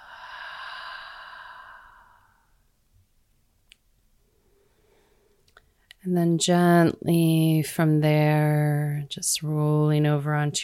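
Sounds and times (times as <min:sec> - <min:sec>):
deep breathy exhale during yoga breathing practice: 0:00.0 - 0:02.6
speech: 0:06.0 - 0:10.6.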